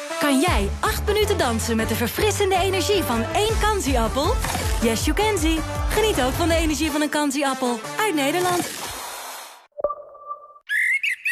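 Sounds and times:
speech: 0:00.3 - 0:08.8
blackbird singing: 0:10.7 - 0:11.3.

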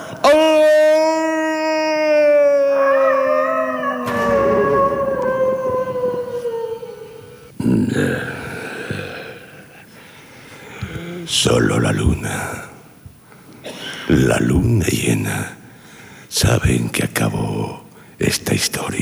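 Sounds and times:
wolf-like howl: 0:00.2 - 0:07.6
speech: 0:11.4 - 0:12.7, 0:14.2 - 0:15.5, 0:16.4 - 0:19.0.

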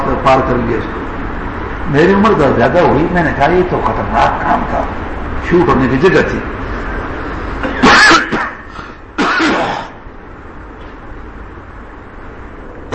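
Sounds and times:
speech: 0:00.2 - 0:01.0, 0:01.8 - 0:06.6
harsh coughing: 0:07.6 - 0:10.0.

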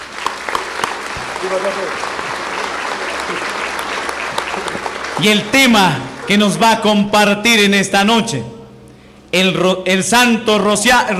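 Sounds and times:
audience applauding loudly to welcome a priest at an evening religious talk: 0:00.0 - 0:06.6
speech: 0:01.4 - 0:02.2, 0:05.2 - 0:08.6, 0:09.3 - 0:11.1.

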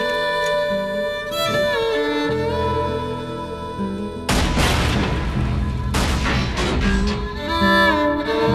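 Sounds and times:
sustained tonal music: 0:00.0 - 0:08.5
crackling bursts: 0:00.4 - 0:08.5
gunshot fired into the engine of an old lawnmower: 0:04.3 - 0:07.2.

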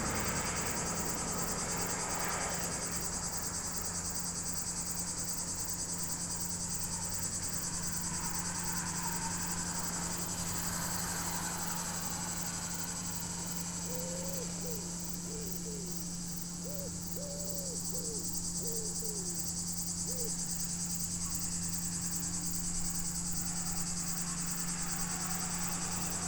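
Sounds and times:
cicada song at a roadside in Chindrieux France on a hot sunny day: 0:00.0 - 0:26.2
crickets chirping: 0:00.0 - 0:26.2
low continuous hum: 0:00.0 - 0:26.2
wood pigeon cooing: 0:13.9 - 0:16.0, 0:16.6 - 0:19.4.

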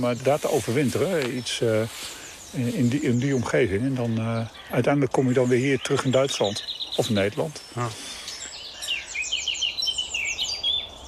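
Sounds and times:
speech: 0:00.0 - 0:08.2
Eurasian blackcap singing at dawn in a hawthorn hedgerow: 0:05.4 - 0:11.0.

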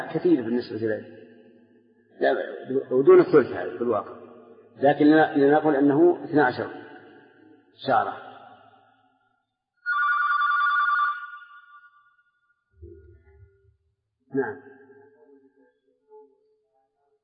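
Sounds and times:
speech: 0:00.0 - 0:01.2, 0:02.2 - 0:04.2, 0:04.8 - 0:06.8, 0:07.8 - 0:08.3, 0:14.3 - 0:14.7
telephone ringing: 0:09.9 - 0:11.8.

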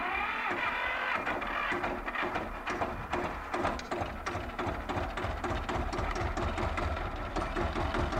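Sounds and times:
motorcycle with sidecar engine chugging: 0:00.0 - 0:08.1.

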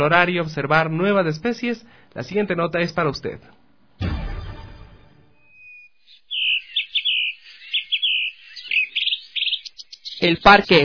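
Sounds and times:
speech: 0:00.0 - 0:04.1, 0:10.2 - 0:10.8
birds singing and chirping in a large forested city park: 0:05.2 - 0:10.8.

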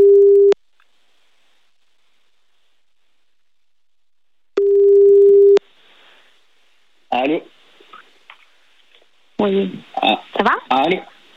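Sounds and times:
telephone ringing tone while calling someone: 0:00.0 - 0:00.6, 0:04.6 - 0:05.6
speech: 0:09.4 - 0:11.1.

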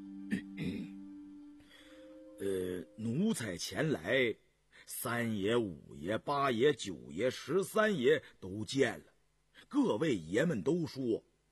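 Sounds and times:
light cough from a person sitting in thought: 0:00.3 - 0:00.9
speech: 0:02.4 - 0:11.3.

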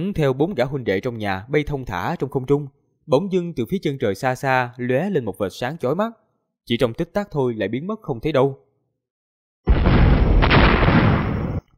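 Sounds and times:
speech: 0:00.0 - 0:08.6
heavy explosion rumbling: 0:09.7 - 0:11.6.

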